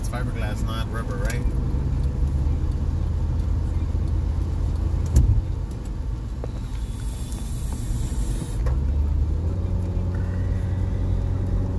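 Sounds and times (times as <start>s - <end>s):
car engine drone: 0.0s - 11.7s
road rumble from inside a moving car: 0.0s - 11.7s
speech: 0.1s - 1.9s
hissing swell as the car brakes: 6.6s - 8.8s.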